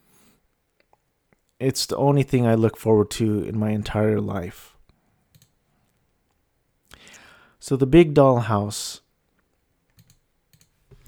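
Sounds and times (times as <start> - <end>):
speech: 1.6 - 4.7, 7.6 - 9.0
typing on a computer keyboard: 5.3 - 5.5, 10.0 - 11.0.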